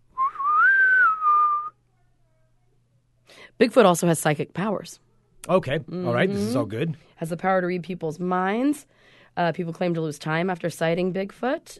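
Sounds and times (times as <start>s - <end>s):
person whistling in imitation of a steam-engine whistle: 0.2s - 1.7s
speech: 3.6s - 11.7s.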